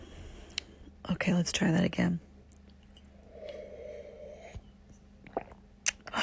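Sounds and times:
speech: 1.1 - 2.3
person slurping and sipping coffee: 3.2 - 4.7, 5.2 - 6.1
gurgling slurp of coffee: 5.2 - 5.6.

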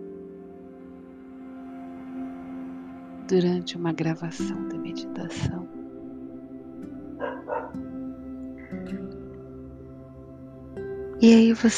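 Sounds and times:
speech: 3.3 - 5.8, 11.2 - 11.7
dog barking: 7.2 - 7.8.

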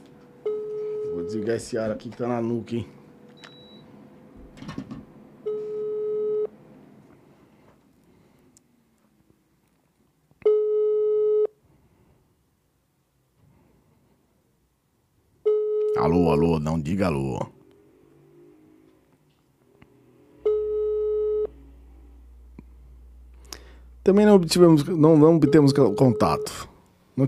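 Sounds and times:
telephone ringback tone from an unanswered call: 0.4 - 1.6, 5.4 - 6.5, 10.4 - 11.6, 15.5 - 16.1, 20.4 - 21.6, 25.3 - 26.6
speech: 1.3 - 3.0, 16.8 - 17.6, 24.1 - 27.2.

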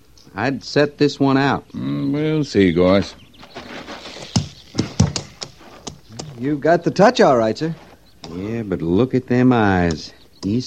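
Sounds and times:
faint hiss: 0.0 - 10.6
speech: 0.3 - 3.2, 6.4 - 10.6
horse hooves clip-clopping on hard ground: 3.0 - 8.8.

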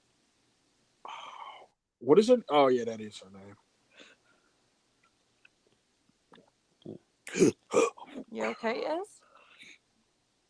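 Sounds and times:
faint small noises: 0.0 - 10.4
speech: 2.0 - 3.7, 6.9 - 9.2
deep gurgling burp: 6.4 - 8.1.

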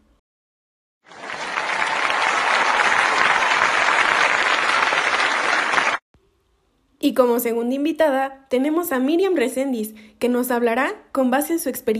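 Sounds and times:
studio audience applause welcoming a psychologist guest: 1.0 - 6.0
speech: 7.0 - 11.9.

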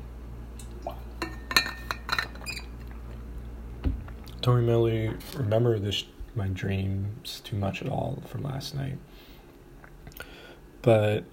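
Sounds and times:
glass clinking while getting water: 1.2 - 2.6
speech: 4.5 - 9.2, 10.8 - 11.3.

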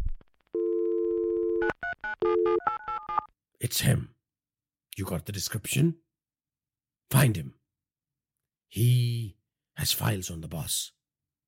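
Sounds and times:
long steady pitched telephone tone on a mobile after dialing: 0.6 - 3.3
speech: 3.6 - 4.2, 5.0 - 6.0, 7.1 - 7.6, 8.7 - 11.0.

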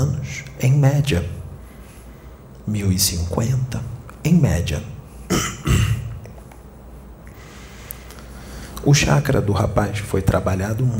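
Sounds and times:
speech: 0.0 - 1.4, 2.7 - 6.0, 8.8 - 10.9
faint hiss: 0.0 - 10.9
young man clearing throat: 5.3 - 6.3.

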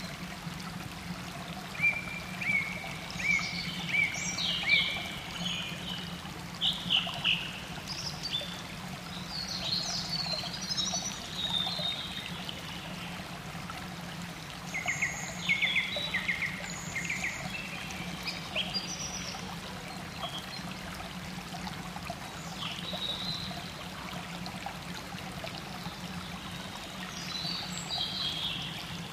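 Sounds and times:
running water of a mountain spring: 0.0 - 29.1
birdsong in a forest: 1.8 - 13.3, 14.6 - 20.8, 25.8 - 29.1.

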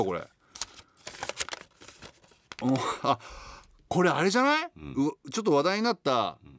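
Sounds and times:
speech: 0.0 - 0.3, 2.6 - 6.5
handwritten paper sheet from a yellow gacha capsule crinkling while unfolded: 0.5 - 2.8.

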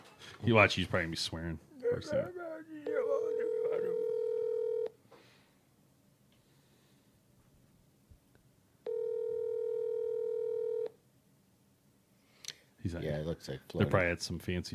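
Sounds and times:
speech: 0.4 - 3.0, 12.9 - 14.7
outgoing Skype call ringback tones: 2.9 - 4.9, 8.8 - 11.0.

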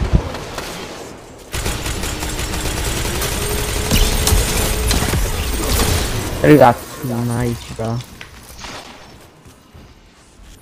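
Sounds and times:
video game hand cannon gunshots: 0.0 - 6.9
speech: 6.4 - 8.1.

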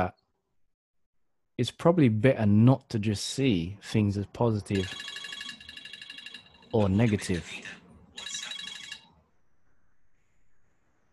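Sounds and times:
speech: 0.0 - 0.2, 1.6 - 5.2, 6.7 - 7.8
phone ringtone of an incoming call: 4.8 - 7.6, 8.2 - 9.2.

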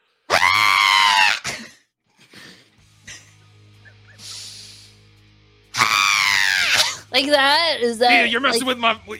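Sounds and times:
person imitating a screech: 0.3 - 1.5, 5.8 - 7.1
speech: 7.2 - 9.1.

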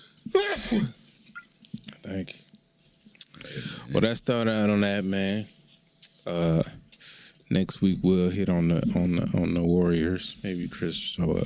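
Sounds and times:
speech: 0.0 - 1.0, 2.1 - 2.4, 3.9 - 5.6, 6.3 - 6.8, 7.5 - 11.4
person sneezing: 0.3 - 1.1.

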